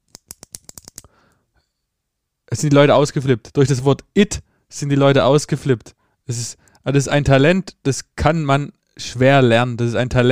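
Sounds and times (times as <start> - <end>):
ballpoint pen clicking: 0.0 - 1.1
speech: 2.5 - 10.3.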